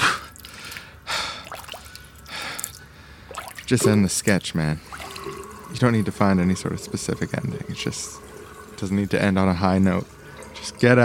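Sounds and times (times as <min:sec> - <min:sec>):
sharp breathy gasps: 0:00.0 - 0:03.3
person splashing water on their face: 0:00.0 - 0:05.6
water dripping: 0:00.0 - 0:11.0
speech: 0:03.7 - 0:05.0, 0:05.8 - 0:08.2, 0:08.8 - 0:10.2, 0:10.8 - 0:11.0.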